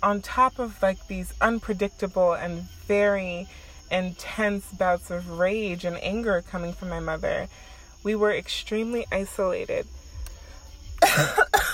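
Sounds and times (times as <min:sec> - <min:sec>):
speech: 0:00.0 - 0:10.0, 0:11.2 - 0:11.4
coughs: 0:11.0 - 0:11.7.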